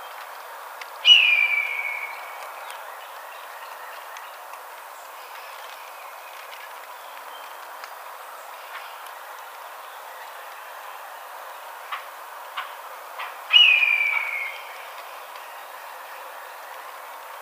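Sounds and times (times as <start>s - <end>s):
Red-tailed Hawk: 1.0s - 4.3s, 13.2s - 16.1s.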